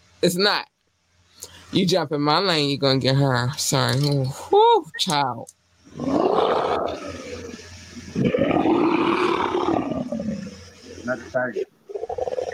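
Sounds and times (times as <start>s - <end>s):
speech: 0.2s - 0.7s, 1.7s - 7.0s, 11.1s - 11.7s
person imitating a lion's roar: 5.9s - 12.5s
short breathy vocal bursts: 5.9s - 12.5s.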